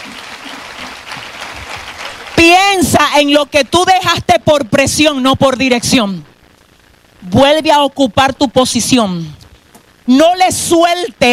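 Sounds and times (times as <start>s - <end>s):
congregation applauding at a church service: 0.0s - 2.8s
speech: 3.2s - 6.3s, 7.2s - 9.4s, 10.1s - 11.3s.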